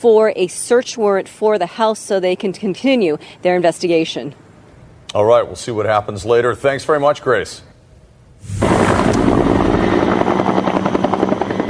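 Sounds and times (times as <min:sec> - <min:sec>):
speech: 0:00.0 - 0:04.4, 0:05.1 - 0:07.7
helicopter rotor roar flying over wildfire: 0:08.5 - 0:11.6.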